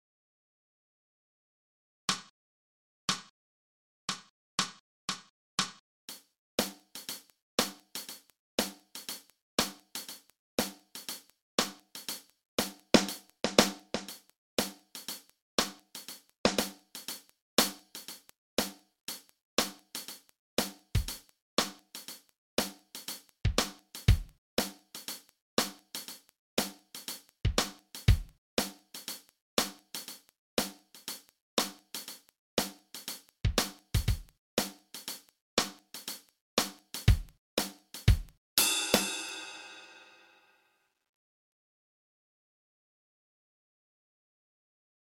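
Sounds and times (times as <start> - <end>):
blues drum track: 4.1 - 40.2.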